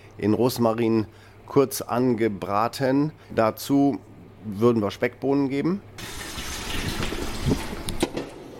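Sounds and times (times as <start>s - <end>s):
speech: 0.2s - 6.2s
tap water running into a cooking pot for potatoes: 6.0s - 8.1s.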